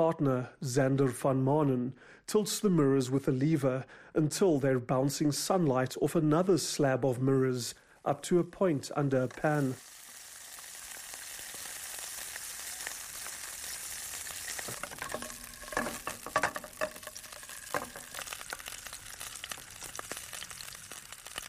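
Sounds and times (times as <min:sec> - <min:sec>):
speech: 0:00.0 - 0:09.9
sausages and onions sizzling in a pan on a solar cooker in South Africa: 0:08.8 - 0:21.4
utensil clinking while stirring: 0:14.7 - 0:18.2.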